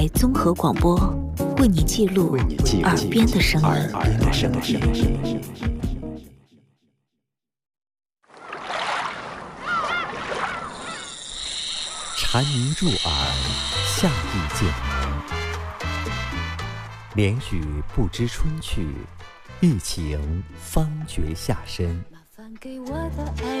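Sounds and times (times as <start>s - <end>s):
speech: 0.0s - 5.7s, 12.3s - 14.9s, 17.2s - 23.5s
cicadas buzzing: 9.6s - 16.8s.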